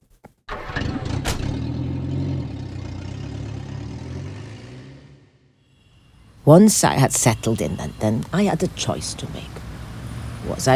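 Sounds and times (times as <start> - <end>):
car engine cranking and settling into a rumbling idle: 0.5 - 5.4
speech: 6.5 - 9.6, 10.5 - 10.7.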